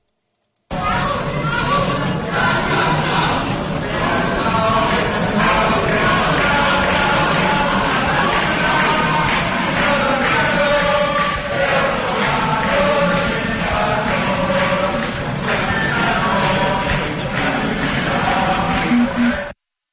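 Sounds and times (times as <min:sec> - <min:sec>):
large crowd of students occupying a university singing a protest song: 0:00.8 - 0:19.6.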